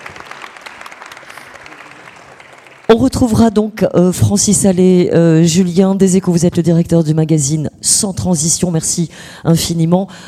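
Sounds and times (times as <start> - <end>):
audience applause for a guest after questions at a talk: 0.0 - 2.9
speech: 2.9 - 10.2.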